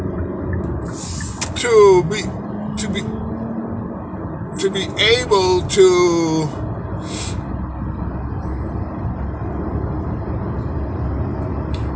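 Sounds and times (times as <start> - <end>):
freeway traffic roar: 0.0 - 11.9
speech: 0.6 - 3.3, 4.6 - 7.4.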